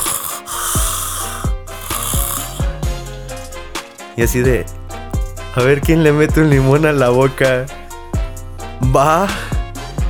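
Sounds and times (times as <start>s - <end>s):
voice imitating loud snoring of a person sleeping: 0.0s - 2.7s
speech: 4.2s - 4.8s, 5.6s - 7.8s, 8.8s - 9.5s.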